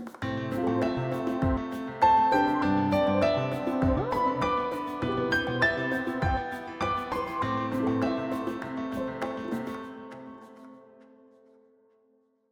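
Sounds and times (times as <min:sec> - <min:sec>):
soft piano: 0:00.2 - 0:11.9.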